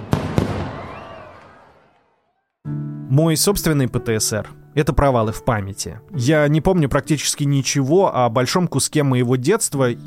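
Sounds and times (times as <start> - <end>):
firecracker bangs: 0.0 - 1.5
rumble of fireworks: 0.0 - 1.8
speech: 3.1 - 10.0.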